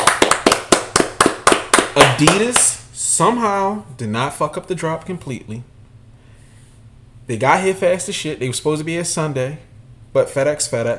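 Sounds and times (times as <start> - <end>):
round of applause: 0.0 - 2.8
speech: 2.0 - 5.7, 7.3 - 10.9.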